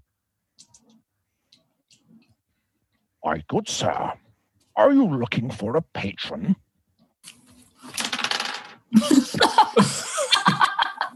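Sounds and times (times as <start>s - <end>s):
speech: 3.2s - 4.2s, 4.8s - 6.6s
small dice clattering across a hard tabletop: 7.8s - 8.8s
laughter: 8.9s - 11.1s.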